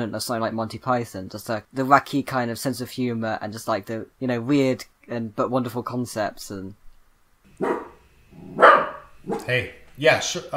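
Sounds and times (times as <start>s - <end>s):
speech: 0.0s - 6.8s, 9.2s - 10.5s
dog barking: 7.6s - 9.6s.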